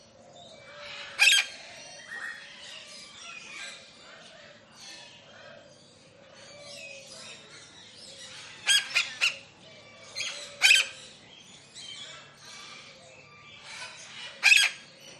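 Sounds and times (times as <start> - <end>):
lilac-crowned amazon squawking in a large tropical aviary: 1.0 - 1.5, 8.6 - 9.4, 10.6 - 11.0.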